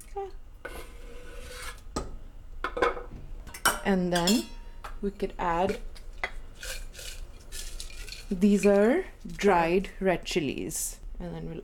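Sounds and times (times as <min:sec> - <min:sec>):
speech: 0:00.2 - 0:00.4, 0:03.9 - 0:05.9, 0:08.3 - 0:11.6
chopped tomatoes scraped into a preheated metal pressure cooker: 0:00.6 - 0:01.9, 0:05.7 - 0:08.4.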